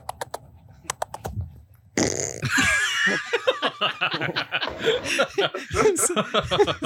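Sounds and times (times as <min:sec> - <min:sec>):
sharp clicks: 0:00.0 - 0:01.4
loud squeaky fart blast played back from a video: 0:02.0 - 0:02.5
chuckling and snickering laughter: 0:02.4 - 0:06.8.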